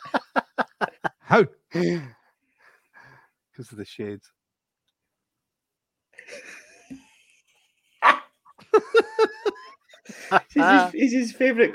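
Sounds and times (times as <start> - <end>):
laughter: 0.0 - 1.9, 6.2 - 11.0
speech: 1.3 - 2.2, 3.6 - 4.4, 10.3 - 11.7
dog barking: 8.0 - 8.3.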